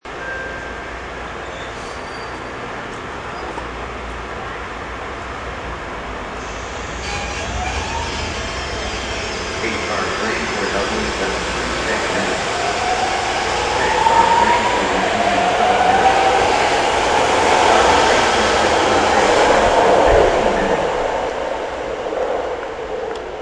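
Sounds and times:
subway train at a train station: 0:00.0 - 0:23.3.

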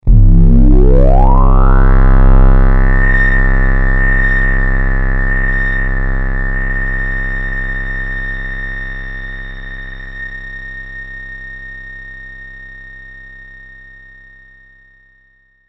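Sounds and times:
high science fiction synth stab with ring: 0:00.0 - 0:07.7.

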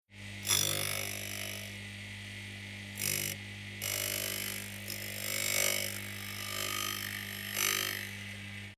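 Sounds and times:
industrial bench metal grinder grinding, light and high pitched: 0:00.2 - 0:08.7.

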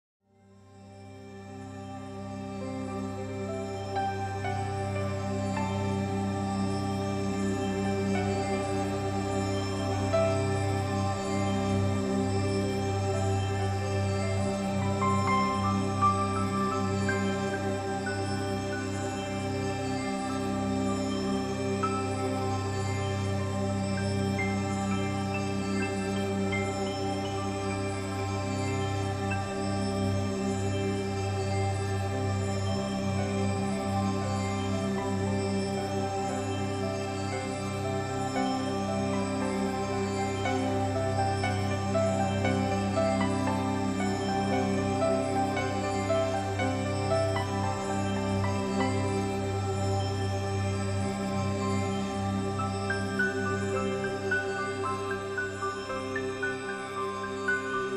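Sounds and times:
angelic shimmering piano texture: 0:00.8 - 0:57.9.

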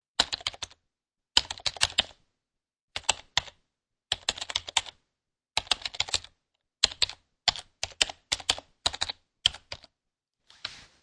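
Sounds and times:
typing on a computer numeric keypad: 0:00.2 - 0:00.8, 0:01.4 - 0:02.2, 0:03.0 - 0:05.0, 0:05.6 - 0:09.9.

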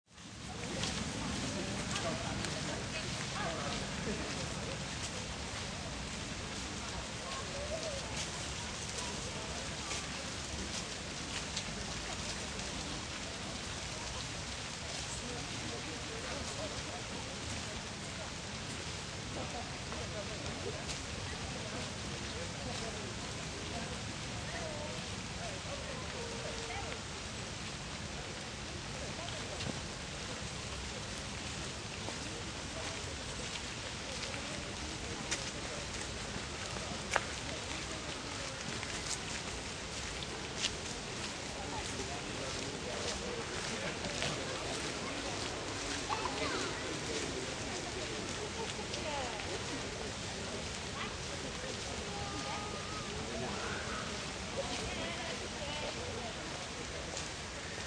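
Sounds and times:
light crowd ambience in a park: 0:00.1 - 0:57.8.

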